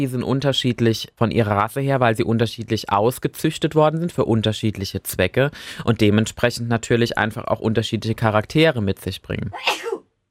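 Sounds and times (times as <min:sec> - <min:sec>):
speech: 0:00.0 - 0:10.0
sneeze: 0:09.6 - 0:10.1.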